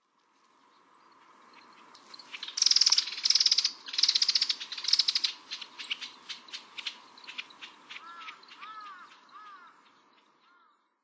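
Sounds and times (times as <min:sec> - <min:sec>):
Marsh Grassbird singing: 0:00.7 - 0:10.9.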